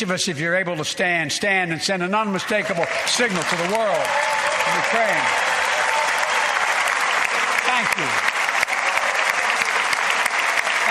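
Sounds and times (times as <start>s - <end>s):
speech: 0.0s - 5.5s, 8.0s - 8.3s
large crowd applauding in a legislative chamber hall: 2.3s - 10.8s.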